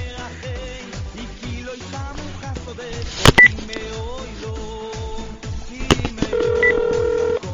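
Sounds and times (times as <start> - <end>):
steady rhythmic pulsing background: 1.1 - 7.5
telephone ringing with electronic beeps: 6.1 - 7.5.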